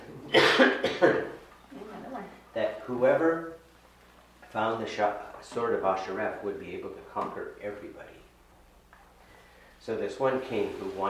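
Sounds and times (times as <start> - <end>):
speech: 0.3 - 1.3, 4.6 - 8.2, 9.8 - 11.0
harsh coughs: 0.3 - 1.4.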